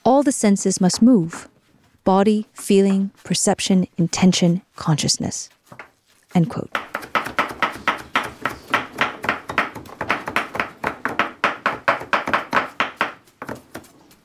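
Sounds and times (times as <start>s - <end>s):
speech: 0.2s - 7.0s
knife chopping food on a cutting board in a kitchen: 6.7s - 14.0s.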